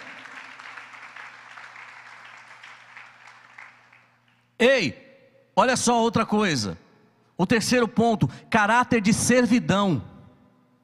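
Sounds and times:
crowd applauding: 0:00.0 - 0:04.5
speech: 0:04.6 - 0:05.0, 0:05.6 - 0:06.8, 0:07.4 - 0:10.1.

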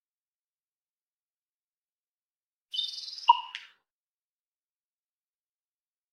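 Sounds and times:
Common raven twittering note dropping into a hollow pop: 0:02.7 - 0:03.8.

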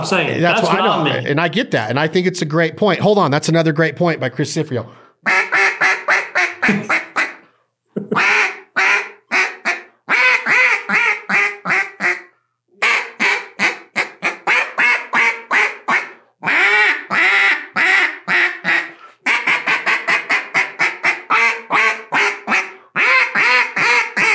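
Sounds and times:
speech: 0:00.0 - 0:05.4, 0:06.7 - 0:07.0
duck call quacking in rapid raspy bursts: 0:05.2 - 0:07.5, 0:08.1 - 0:24.3.

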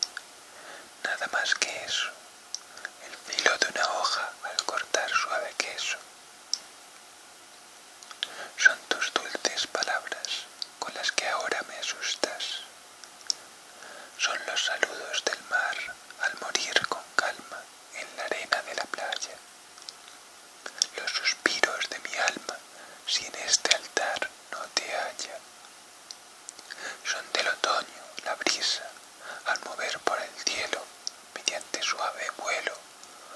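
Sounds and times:
whispered S sounds with breathy hissing sibilants: 0:01.0 - 0:06.1, 0:08.2 - 0:12.7, 0:14.2 - 0:19.4, 0:20.6 - 0:25.4, 0:26.7 - 0:33.3
speech: 0:01.2 - 0:02.3, 0:03.5 - 0:06.2, 0:11.0 - 0:12.6, 0:14.2 - 0:16.0.

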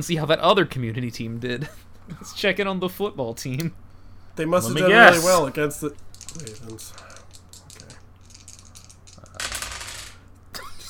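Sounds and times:
speech: 0:00.0 - 0:03.8, 0:04.4 - 0:07.1
dice clattering on a hard surface: 0:06.0 - 0:10.2.

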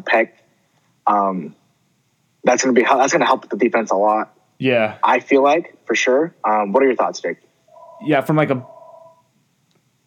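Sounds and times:
speech: 0:00.0 - 0:00.4, 0:01.0 - 0:01.6, 0:02.4 - 0:08.7
low hiss: 0:00.0 - 0:10.0
phone ringing with an electronic tone: 0:07.7 - 0:09.2.

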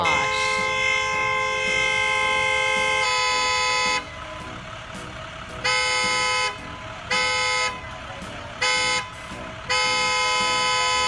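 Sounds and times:
car horn honked impatiently by a driver in Kentucky: 0:00.0 - 0:04.2, 0:05.5 - 0:11.0.

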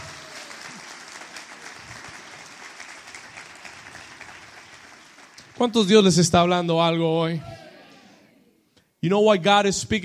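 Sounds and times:
large congregation applauding: 0:00.0 - 0:06.4
speech: 0:05.6 - 0:07.6, 0:09.0 - 0:10.0.

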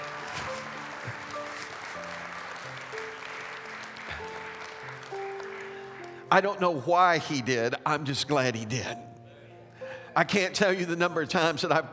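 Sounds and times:
crowd applauding: 0:00.0 - 0:06.9
speech: 0:06.3 - 0:09.1, 0:10.2 - 0:11.9.

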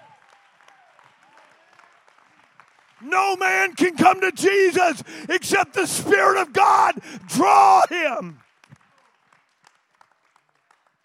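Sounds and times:
crowd applauding: 0:00.0 - 0:05.2, 0:07.0 - 0:11.0
speech: 0:03.0 - 0:08.4
faint voices calling out: 0:03.9 - 0:08.3.

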